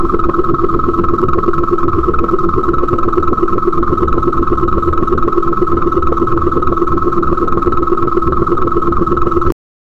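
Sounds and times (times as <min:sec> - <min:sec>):
deep steady laser beam: 0:00.0 - 0:09.5.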